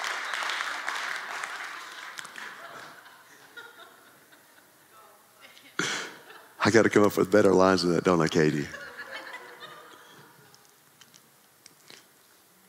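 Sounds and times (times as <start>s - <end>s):
room of people giving light scattered applause: 0.0s - 3.1s
laughter: 1.9s - 7.0s, 8.4s - 10.5s
speech: 6.6s - 8.8s.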